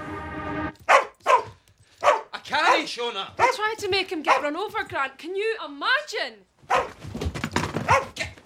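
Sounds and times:
collie barking: 0.8s - 3.7s, 4.3s - 4.5s, 6.7s - 7.0s, 7.8s - 8.3s
speech: 2.5s - 6.9s, 7.9s - 8.4s.

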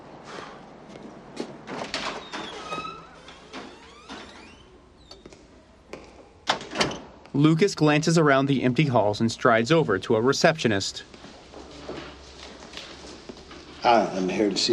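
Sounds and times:
front door of a building opening: 1.4s - 5.3s, 6.4s - 7.2s
speech: 7.4s - 11.1s, 13.8s - 14.7s.

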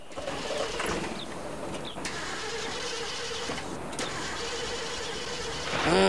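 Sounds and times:
rattles and clunks over rough ground: 0.0s - 6.0s
snack-shack vehicle engine rumbling over arid dusty terrain at dusk: 0.0s - 6.0s.

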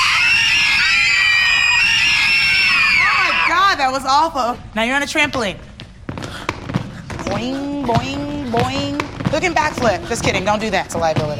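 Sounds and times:
crowd of people screaming on instruction: 0.0s - 3.7s
speech: 3.8s - 5.7s, 7.3s - 11.3s.

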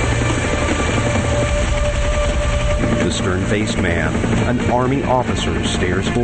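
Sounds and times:
helicopter approaching over a tropical island: 0.0s - 6.2s
speech: 3.3s - 6.2s.

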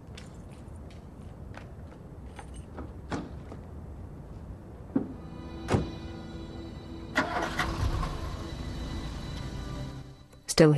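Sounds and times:
car door shutting: 5.0s - 6.1s
car engine starting and driving away from a house: 5.0s - 10.4s
speech: 10.6s - 10.7s.

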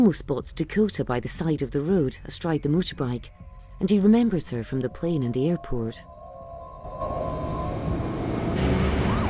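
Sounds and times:
speech: 0.0s - 6.2s
police car sirens wailing: 6.8s - 9.2s
police car engines roaring past: 7.0s - 9.2s.

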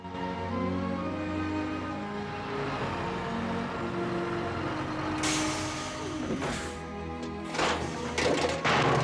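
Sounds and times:
rubbish collection truck engine rumbling on a residential street: 0.0s - 9.0s
rubbish collection truck air brakes hissing: 5.2s - 6.9s
bins crashing and clattering as they are tipped and emptied: 7.4s - 9.0s.

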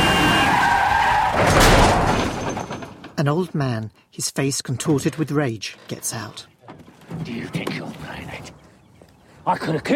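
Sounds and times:
camper van tires squealing in a skid on a country roadside: 0.0s - 2.0s
camper van crash: 0.0s - 3.2s
speech: 3.2s - 8.3s, 9.5s - 9.9s.

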